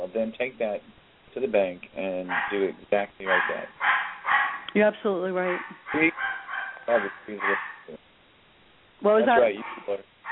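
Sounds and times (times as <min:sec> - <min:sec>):
speech: 0:00.1 - 0:03.9, 0:04.7 - 0:06.3, 0:06.9 - 0:08.1, 0:09.0 - 0:10.1
dog barking in short sharp bursts: 0:02.2 - 0:04.7, 0:05.4 - 0:08.0, 0:09.4 - 0:10.3.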